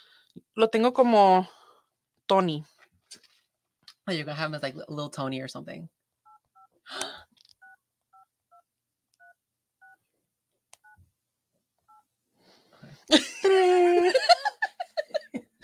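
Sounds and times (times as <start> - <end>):
speech: 0.6 - 1.6, 2.3 - 2.7, 4.1 - 6.0, 6.9 - 7.3, 13.1 - 14.5
telephone keypad dialing beeps: 6.3 - 6.7, 7.6 - 8.6, 9.2 - 10.0
person giggling: 13.0 - 15.6.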